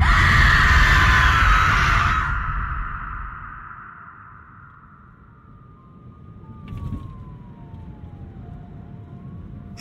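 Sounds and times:
ghostly woman screaming and wailing: 0.0s - 4.6s.

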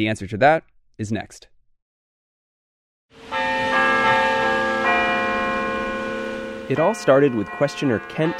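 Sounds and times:
speech: 0.0s - 1.5s, 6.7s - 8.3s
church bells ringing: 3.2s - 8.3s.

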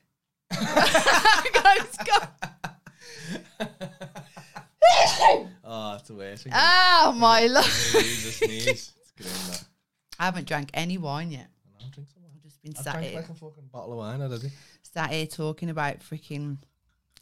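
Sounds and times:
laughter: 0.5s - 4.9s, 7.6s - 8.9s
person sneezing: 4.8s - 5.5s, 9.2s - 9.6s
speech: 6.1s - 9.0s, 10.2s - 16.7s.

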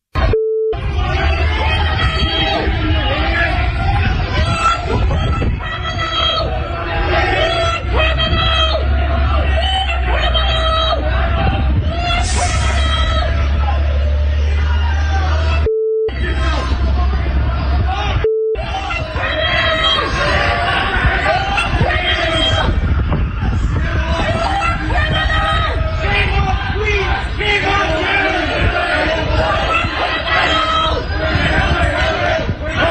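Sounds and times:
brief steady beeps: 0.2s - 0.9s, 15.6s - 16.2s, 18.2s - 18.7s
large crowd shouting and jeering outside Queen's University in Belfast: 0.2s - 32.8s.

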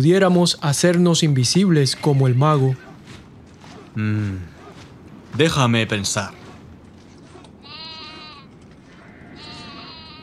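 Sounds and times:
speech: 0.0s - 2.9s, 4.0s - 4.5s, 5.3s - 6.4s
steady rumbling noise: 0.0s - 10.2s
goats bleating: 7.4s - 10.2s.

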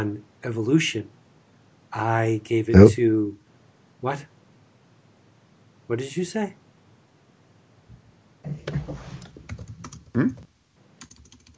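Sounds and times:
speech: 0.0s - 1.2s, 1.9s - 3.4s, 4.0s - 4.3s, 5.9s - 6.6s, 10.2s - 10.4s
man typing on a computer keyboard: 8.7s - 10.4s, 11.0s - 11.5s.

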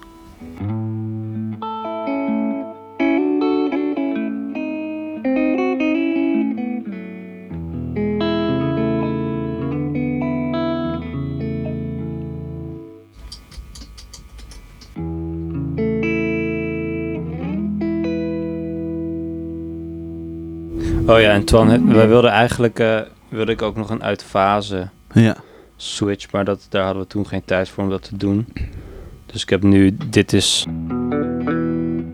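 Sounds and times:
electric guitar with flatwound strings playing: 0.0s - 13.2s, 14.9s - 22.9s, 30.7s - 32.1s
noisy scratch: 20.7s - 22.5s
speech: 21.1s - 28.6s, 29.3s - 31.0s.

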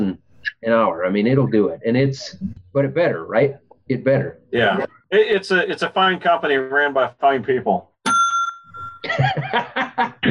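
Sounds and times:
speech: 0.1s - 7.9s, 9.0s - 10.2s
hand bell ringing: 8.1s - 9.0s
several people bursting into rhythmic laughter: 9.0s - 10.2s.

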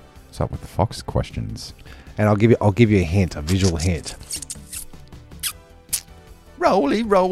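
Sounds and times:
speech: 0.3s - 4.5s, 6.6s - 7.2s
rolling paper crinkling around tobacco while rolling a cigarette: 3.4s - 4.3s.

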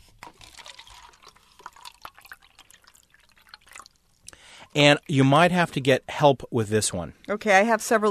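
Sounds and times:
water pouring into a styrofoam cup: 0.2s - 5.4s
speech: 4.7s - 8.0s.

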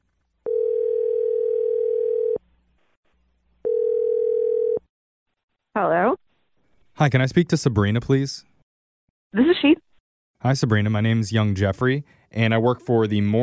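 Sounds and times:
telephone dial tone: 0.5s - 2.4s, 3.6s - 4.8s
speech: 7.0s - 8.5s, 9.3s - 9.8s, 10.4s - 13.4s.

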